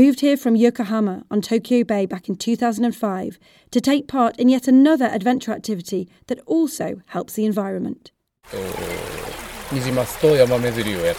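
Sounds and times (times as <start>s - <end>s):
speech: 0.0s - 11.1s
mountain river water flowing: 8.5s - 11.1s.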